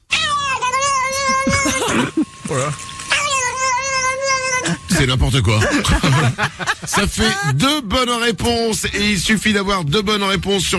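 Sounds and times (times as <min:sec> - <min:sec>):
cat yowling while its back is scratched: 0:00.1 - 0:01.8, 0:03.1 - 0:04.6
speech: 0:02.5 - 0:02.9, 0:04.7 - 0:10.7
laughter: 0:04.9 - 0:07.8.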